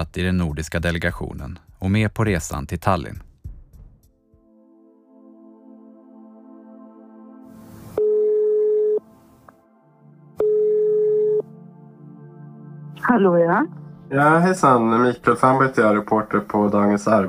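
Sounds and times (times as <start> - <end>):
speech: 0.0 - 3.3, 13.2 - 17.2
telephone ringback tone of a call: 8.0 - 9.0, 10.4 - 11.5.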